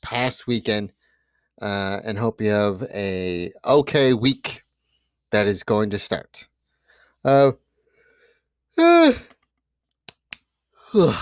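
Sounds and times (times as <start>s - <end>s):
speech: 0.1s - 1.0s, 1.6s - 4.6s, 5.3s - 6.5s, 7.2s - 7.6s, 8.8s - 9.4s, 10.9s - 11.2s
person yawning: 8.8s - 9.3s, 10.8s - 11.2s.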